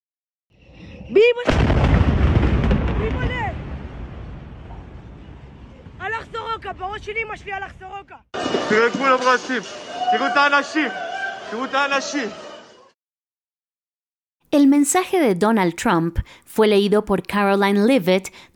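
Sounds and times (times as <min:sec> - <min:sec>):
speech: 0:01.1 - 0:01.8, 0:06.6 - 0:12.4, 0:14.5 - 0:18.5
bombing explosion from a strike on a hospital in Be'er Sheva, Israel: 0:01.5 - 0:07.8
raised voices shouting amid noisy commotion: 0:08.4 - 0:12.9.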